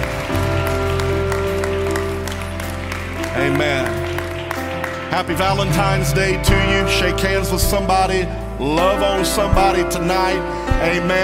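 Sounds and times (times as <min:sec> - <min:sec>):
audience clapping hands in thanks: 0:00.0 - 0:06.1
sustained organ or keyboard chords: 0:00.0 - 0:11.2
speech: 0:05.1 - 0:11.2.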